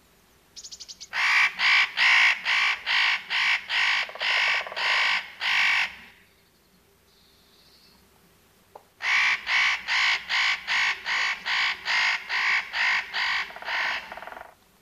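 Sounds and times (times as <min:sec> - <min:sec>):
northern nutcracker screeching calls: 0:00.6 - 0:06.1, 0:09.0 - 0:14.6.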